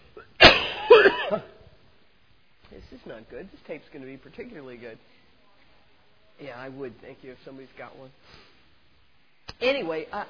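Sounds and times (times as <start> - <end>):
person coughing: 0.2 - 1.6
speech: 1.0 - 1.5, 3.0 - 5.2, 6.4 - 8.5, 9.6 - 10.2.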